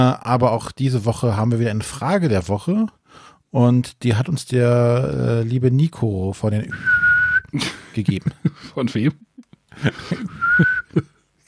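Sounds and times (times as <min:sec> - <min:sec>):
speech: 0:00.0 - 0:11.4
person whistling one short steady note: 0:06.7 - 0:07.6, 0:10.3 - 0:11.0
laughter: 0:07.6 - 0:11.4.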